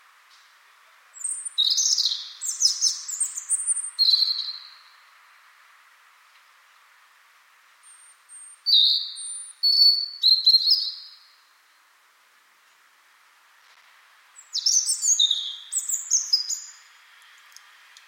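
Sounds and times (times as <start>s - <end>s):
European robin singing: 1.2s - 5.0s, 7.8s - 11.5s, 14.4s - 17.0s.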